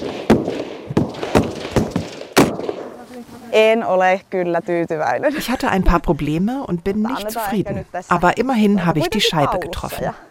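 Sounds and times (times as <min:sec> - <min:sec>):
gunshots at a shooting range in Finland: 0:00.0 - 0:03.0
speech: 0:03.5 - 0:10.2.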